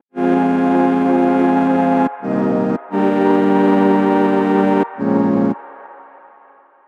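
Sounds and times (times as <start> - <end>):
bass: 0.2 - 5.6
chords: 0.2 - 6.5.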